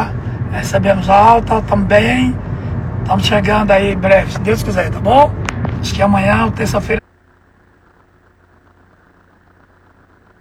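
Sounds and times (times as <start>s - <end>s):
car engine idling heard from inside a car: 0.0s - 7.0s
speech: 0.5s - 7.0s.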